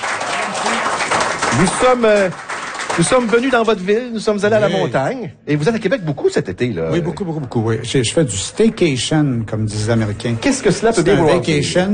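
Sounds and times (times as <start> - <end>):
audience applauding at a microbrewery: 0.0 - 4.0
speech: 1.6 - 11.9.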